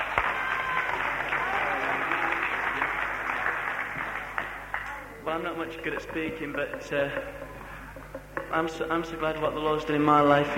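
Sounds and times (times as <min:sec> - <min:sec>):
church audience applauding: 0:00.0 - 0:05.4
speech: 0:05.4 - 0:07.4, 0:08.5 - 0:10.5.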